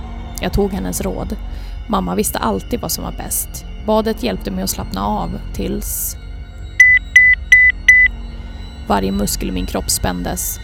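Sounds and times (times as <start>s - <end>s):
speech: 0.4s - 6.3s, 8.9s - 10.6s
phone message notification beeps from a phone on the floor: 6.8s - 8.1s.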